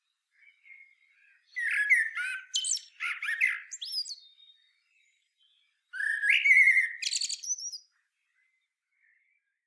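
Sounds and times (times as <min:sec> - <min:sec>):
common blackbird Turdus merula singing: 0:00.4 - 0:07.9.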